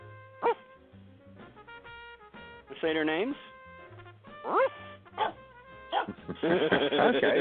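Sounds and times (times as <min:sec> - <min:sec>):
dog barking: 0:00.4 - 0:00.7, 0:04.4 - 0:06.2
speech: 0:02.8 - 0:03.5, 0:04.5 - 0:04.7, 0:06.3 - 0:07.4
laughter: 0:06.1 - 0:07.4.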